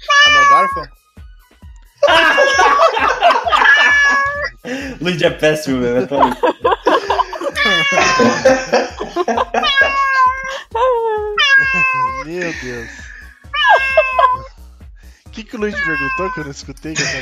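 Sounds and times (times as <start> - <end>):
cat meowing loudly with drawn-out cries: 0.0 - 0.9, 3.5 - 4.6, 7.5 - 8.4, 9.6 - 10.5, 11.4 - 12.3, 13.5 - 14.5, 15.7 - 16.4, 17.0 - 17.2
speech: 0.6 - 1.0, 4.6 - 7.0, 7.7 - 10.1, 12.2 - 13.1, 15.4 - 17.2
person laughing: 2.0 - 14.5, 17.0 - 17.2.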